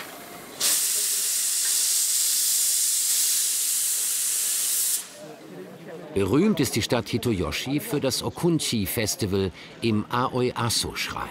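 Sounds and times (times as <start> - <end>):
steam locomotive hissing steam: 0.0 - 5.4
speech: 6.0 - 11.3.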